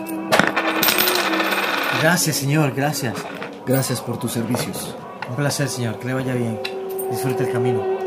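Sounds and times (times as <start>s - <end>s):
coins clinking as handed to a blacksmith in payment: 0.0s - 4.8s
speech: 2.0s - 7.9s.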